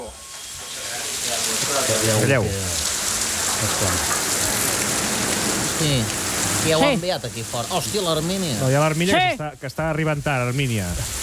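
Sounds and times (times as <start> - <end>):
faint low murmuring voices: 0.0 - 7.0
heavy rain falling: 0.0 - 11.2
speech: 2.0 - 2.8, 3.6 - 4.2, 5.8 - 11.2.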